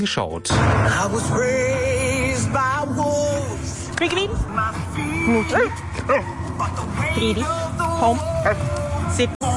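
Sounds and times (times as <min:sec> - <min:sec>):
speech: 0:00.0 - 0:09.4
Border Collie barking and yelping: 0:05.4 - 0:06.4.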